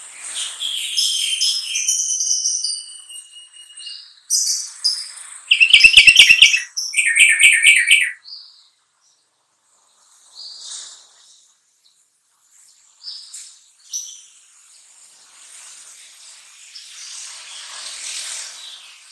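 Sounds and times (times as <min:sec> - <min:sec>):
faint isolated high chirps: 0:04.4 - 0:08.2
Sooty-headed bulbul singing a rapid chattering trucukan song: 0:05.5 - 0:08.2.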